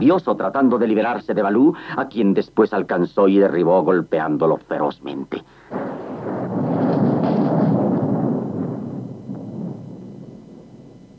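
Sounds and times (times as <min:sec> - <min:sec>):
speech: 0:00.0 - 0:05.9
thunder crack and rumble from lightning striking a dry tree in a strong storm: 0:05.7 - 0:11.1.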